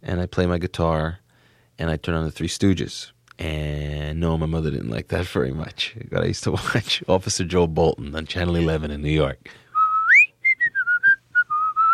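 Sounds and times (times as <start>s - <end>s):
speech: 0.0s - 1.2s, 1.8s - 9.6s
person whistling a TV show theme song: 9.7s - 11.9s.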